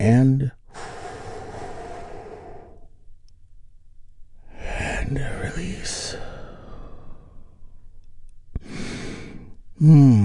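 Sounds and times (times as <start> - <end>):
speech: 0.0 - 0.6, 9.8 - 10.2
deep inhalation during a guided relaxation exercise: 0.7 - 3.0, 6.1 - 7.8, 8.6 - 9.5.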